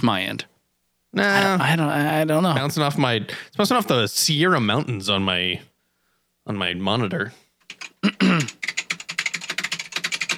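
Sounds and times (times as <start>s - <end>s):
speech: 0.0s - 0.5s, 1.1s - 5.7s, 6.5s - 7.4s, 8.0s - 8.7s
mechanical keyboard typing: 7.6s - 10.3s
person clearing throat: 8.0s - 8.6s.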